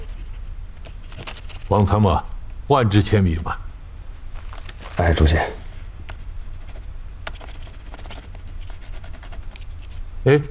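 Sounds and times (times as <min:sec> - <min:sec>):
red-and-blue pencil scratching on paper: 0:00.0 - 0:01.7, 0:05.2 - 0:10.0
speech: 0:01.7 - 0:03.6, 0:05.0 - 0:05.6, 0:10.2 - 0:10.4.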